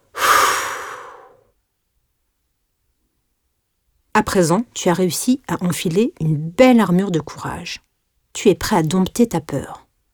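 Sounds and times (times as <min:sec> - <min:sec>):
forceful exhale during a breathing exercise: 0:00.0 - 0:01.5
speech: 0:04.2 - 0:09.8.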